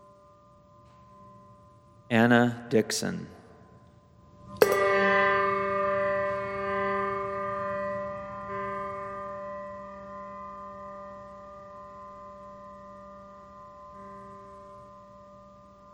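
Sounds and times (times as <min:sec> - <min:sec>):
speech: 0:02.1 - 0:03.4
deep church bell tolling for All Saints: 0:04.5 - 0:11.3.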